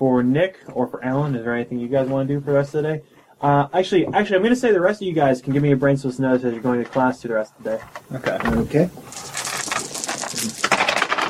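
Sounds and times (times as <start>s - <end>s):
speech: 0.0s - 9.4s
dice clattering across a hard tabletop: 9.1s - 11.2s.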